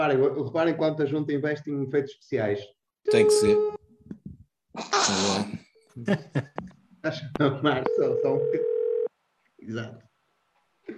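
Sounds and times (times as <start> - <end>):
speech: 0.0 - 3.8, 4.8 - 8.7, 9.6 - 10.0
telephone dial tone: 7.9 - 9.1.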